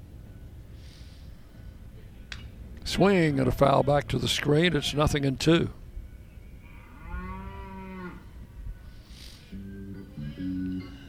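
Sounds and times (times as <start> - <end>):
steady hum: 0.0 - 11.0
speech: 2.9 - 5.8
cow mooing: 6.6 - 8.3.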